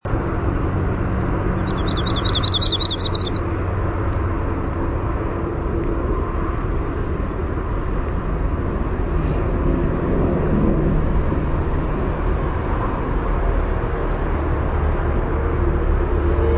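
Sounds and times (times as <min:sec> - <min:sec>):
low vehicle rumble: 0:00.0 - 0:16.5
Yellow-rumped warbler singing a brisk trilled phrase: 0:01.6 - 0:03.5.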